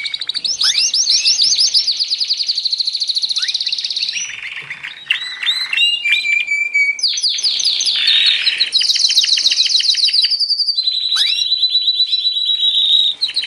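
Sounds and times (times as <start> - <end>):
canary singing: 0.0 - 13.4.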